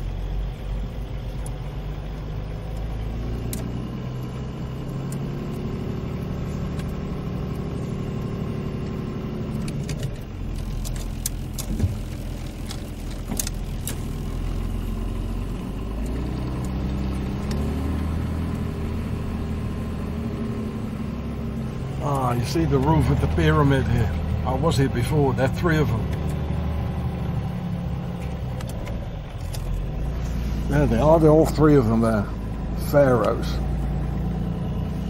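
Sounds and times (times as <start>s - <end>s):
camping car engine running in Belgium: 0.0s - 35.0s
clicks and rattles: 9.5s - 14.1s
speech: 22.4s - 26.2s, 30.7s - 33.7s.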